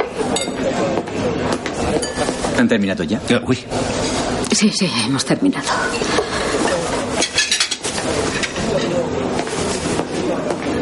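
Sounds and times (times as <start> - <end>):
plates and cutlery clinking as dishes are gathered from a table: 0.0 - 0.8, 1.5 - 2.7, 5.9 - 10.7
low murmur of voices: 0.0 - 10.8
speech: 2.6 - 6.2.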